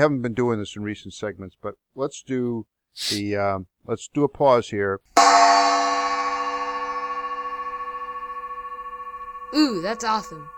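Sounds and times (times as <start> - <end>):
speech: 0.0 - 5.6, 9.5 - 10.5
gong strike: 5.2 - 10.5.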